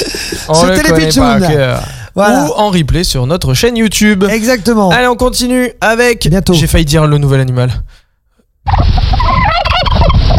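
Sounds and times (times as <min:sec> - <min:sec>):
speech: 0:00.0 - 0:08.0
turkey gobbling: 0:08.7 - 0:10.3.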